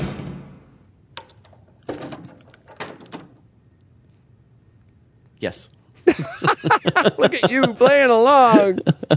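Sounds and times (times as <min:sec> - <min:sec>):
jingling, clicking door latch: 0:01.2 - 0:03.4
speech: 0:05.4 - 0:09.1
laughter: 0:06.0 - 0:09.1.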